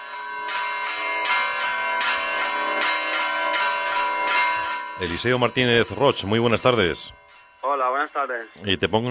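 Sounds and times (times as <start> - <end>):
Castilian church bells ringing: 0.0 - 9.0
speech: 5.0 - 9.0.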